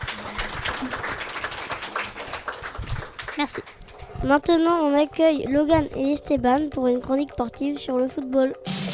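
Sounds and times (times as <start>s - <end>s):
audience applause: 0.0s - 4.0s
speech: 3.4s - 8.8s.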